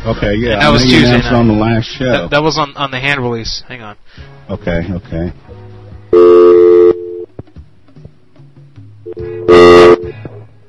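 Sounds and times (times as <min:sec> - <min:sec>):
speech: 0:00.0 - 0:06.3
faint low beeps: 0:06.1 - 0:07.3, 0:09.1 - 0:10.4
loud steady electronic dial tones on a phone line: 0:06.1 - 0:07.3, 0:09.1 - 0:10.2.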